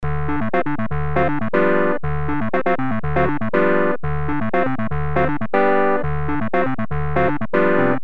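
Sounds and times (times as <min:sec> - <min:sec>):
clavinet synth: 0:00.0 - 0:08.0.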